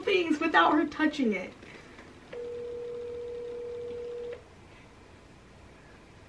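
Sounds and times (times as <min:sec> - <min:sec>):
speech: 0:00.2 - 0:01.6
dial tone from a phone accidentally placing a call: 0:02.3 - 0:04.4.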